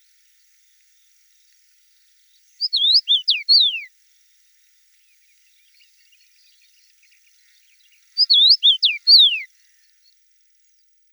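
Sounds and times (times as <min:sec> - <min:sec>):
common rosefinch Carpodacus erythrinus whistled song: 0:02.3 - 0:03.9, 0:05.6 - 0:09.5.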